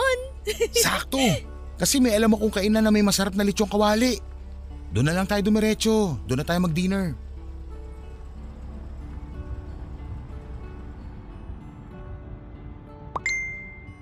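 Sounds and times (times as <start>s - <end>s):
low rumble of a moving car: 0.0s - 13.9s
laughter: 0.4s - 1.4s
speech: 0.5s - 4.3s, 4.9s - 7.2s
cellphone chat message notification ding: 13.2s - 13.9s.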